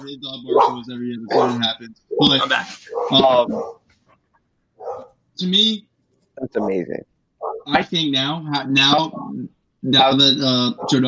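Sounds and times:
speech: 0:00.0 - 0:03.8, 0:04.8 - 0:11.0
dog barking with a whiny yelping edge: 0:00.5 - 0:03.8, 0:04.8 - 0:05.2, 0:07.4 - 0:07.7, 0:10.7 - 0:11.0.

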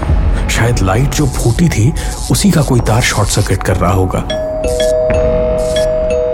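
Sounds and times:
speech: 0:00.6 - 0:05.4
electronic doorbell ringing inside a house: 0:04.3 - 0:06.3.

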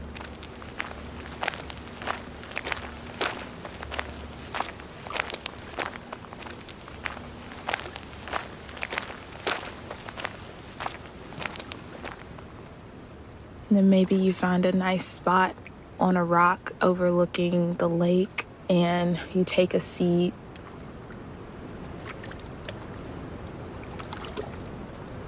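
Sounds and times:
footsteps walking outdoors near a lake: 0:00.0 - 0:12.6
speech: 0:13.8 - 0:20.4.

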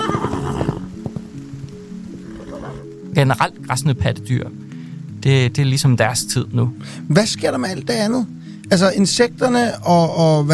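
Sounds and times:
horse neighing: 0:00.0 - 0:01.3, 0:02.2 - 0:02.9
faint patter: 0:00.0 - 0:02.9
speech: 0:03.2 - 0:04.6, 0:05.2 - 0:10.5.

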